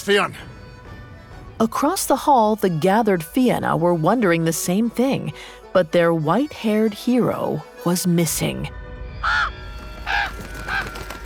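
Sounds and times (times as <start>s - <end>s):
speech: 0.0s - 0.5s, 1.6s - 9.5s
crow cawing: 9.2s - 11.2s.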